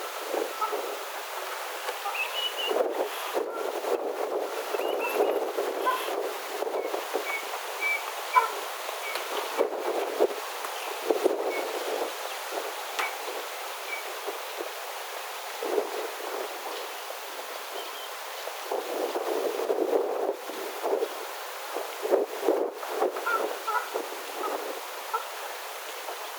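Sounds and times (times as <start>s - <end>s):
flock of ruddy shelducks arriving on a shore: 0.0s - 26.3s
ruddy shelducks calling softly: 0.5s - 3.8s, 4.5s - 9.6s, 23.2s - 25.5s.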